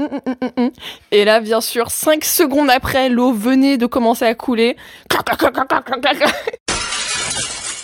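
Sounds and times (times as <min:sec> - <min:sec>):
speech: 0:00.0 - 0:06.7
mirror glass shattering: 0:06.7 - 0:07.8.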